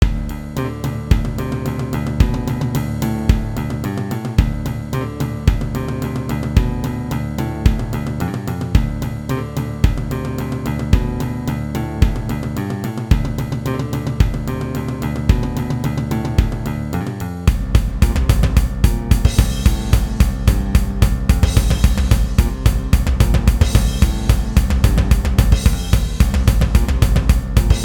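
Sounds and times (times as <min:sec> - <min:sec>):
drums: 0:00.0 - 0:27.8.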